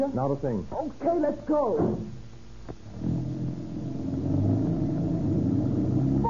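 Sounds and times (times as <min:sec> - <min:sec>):
speech: 0:00.0 - 0:02.8
car engine starting and running as car drives off: 0:02.8 - 0:06.2.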